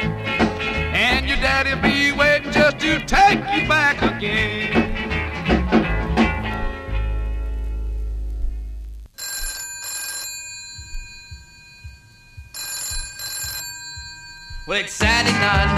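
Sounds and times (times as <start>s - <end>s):
music: 0.0s - 8.7s, 14.8s - 15.7s
telephone bell ringing: 9.2s - 15.2s.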